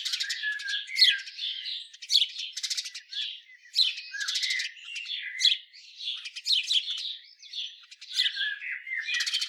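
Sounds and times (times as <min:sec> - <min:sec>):
house sparrow Passer domesticus chirps, harsh squawks and rattling bursts: 0:00.0 - 0:09.4.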